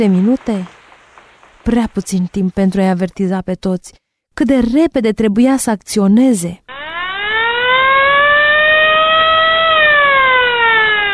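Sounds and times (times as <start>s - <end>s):
speech: 0.0s - 0.8s, 1.6s - 6.8s
civil-defense style siren wailing over a town: 6.7s - 11.1s.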